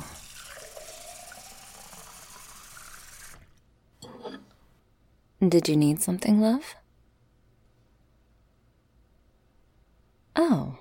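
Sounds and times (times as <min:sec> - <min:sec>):
water pouring from a tap into a glass: 0:00.0 - 0:03.6
speech: 0:05.4 - 0:06.8.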